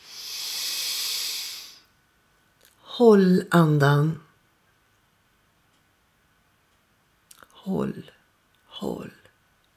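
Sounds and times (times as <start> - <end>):
deep inhalation during a guided breathing exercise: 0.0 - 1.9
speech: 3.0 - 4.2, 7.7 - 8.2, 8.8 - 9.2.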